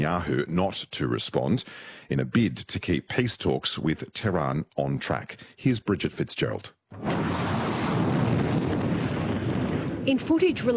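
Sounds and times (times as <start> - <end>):
speech: 0.0 - 7.5, 10.1 - 10.7
military rockets launching with a loud rushing roar: 6.9 - 10.6.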